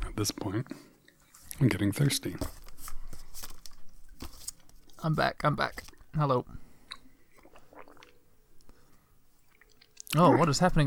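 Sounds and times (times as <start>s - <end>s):
speech: 0.2s - 0.9s, 1.6s - 2.6s, 5.0s - 6.6s, 10.1s - 10.8s
wet chewing of a Snickers candy bar: 6.9s - 8.2s, 9.4s - 10.4s.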